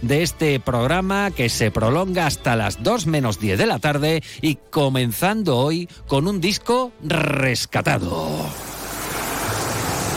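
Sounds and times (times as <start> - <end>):
speech: 0.0 - 8.6
ocean waves: 8.5 - 10.1.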